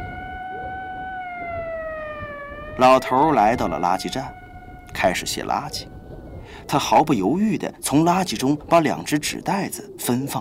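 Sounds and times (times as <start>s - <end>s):
electronic siren of a night-patrol police car driving past: 0.0s - 7.0s
speech: 2.8s - 5.9s, 6.5s - 10.3s.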